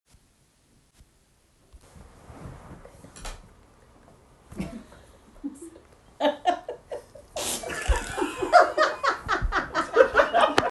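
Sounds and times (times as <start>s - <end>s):
person laughing: 4.6s - 10.6s.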